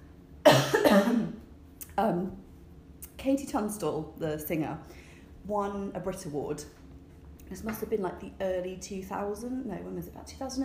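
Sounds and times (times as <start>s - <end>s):
person coughing roughly: 0.5s - 1.4s
speech: 3.2s - 6.8s, 7.5s - 10.6s.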